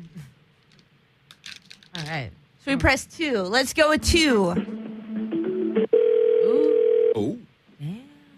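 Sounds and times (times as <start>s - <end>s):
speech: 2.0s - 4.7s
continuous telephone line tone while a call connects: 5.8s - 7.2s.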